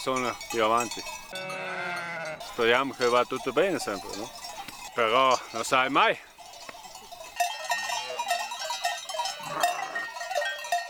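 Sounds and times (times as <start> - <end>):
speech: 0.0 - 4.4, 5.0 - 6.3
bells of a flock of sheep clanking and jingling: 0.0 - 10.8
sheep bleating: 1.3 - 3.9, 9.4 - 10.2.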